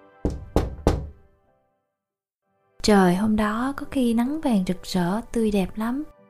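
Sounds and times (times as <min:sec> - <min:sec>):
firm knocks on a wooden door: 0:00.2 - 0:01.2
speech: 0:02.8 - 0:06.2.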